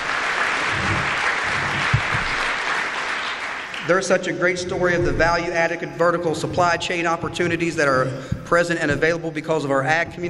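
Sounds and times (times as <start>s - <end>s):
audience applause at an event honoring a milling company anniversary: 0.0s - 4.3s
speech: 3.9s - 10.2s.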